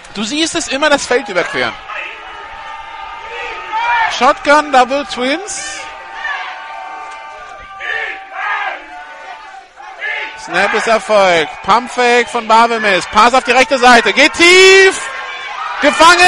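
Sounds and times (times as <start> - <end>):
team sideline crowd cheering: 0.0 - 16.2
speech: 0.2 - 2.1, 4.1 - 5.9, 10.4 - 15.1, 15.8 - 16.2
rhythmic yells: 0.7 - 16.2.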